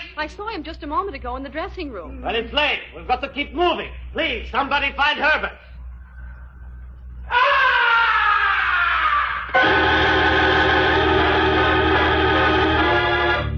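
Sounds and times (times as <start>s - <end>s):
speech: 0.2s - 5.7s
blood-curdling scream from high above an opera house stage: 7.2s - 13.5s.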